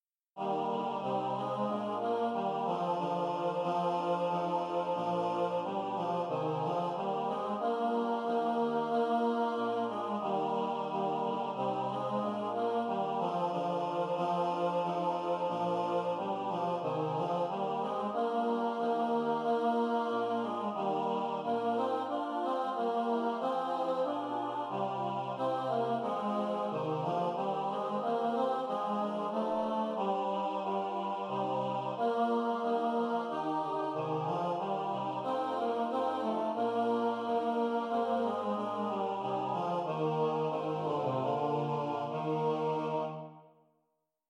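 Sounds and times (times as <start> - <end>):
tenor singing: 0.4 - 43.2.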